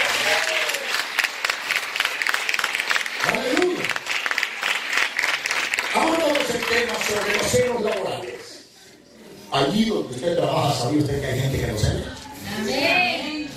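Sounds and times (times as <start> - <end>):
crowd applause: 0.0 - 8.6
speech: 9.5 - 13.0.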